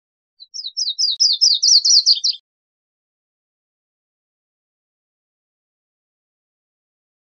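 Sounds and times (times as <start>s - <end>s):
Virginia's warbler song: 0.4s - 2.4s.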